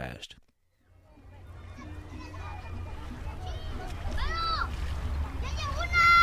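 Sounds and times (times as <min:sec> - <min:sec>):
speech: 0:00.2 - 0:00.4
children's voices calling and shouting on a river bank: 0:00.8 - 0:06.2
water splashes in a narrow desert river: 0:01.4 - 0:06.2.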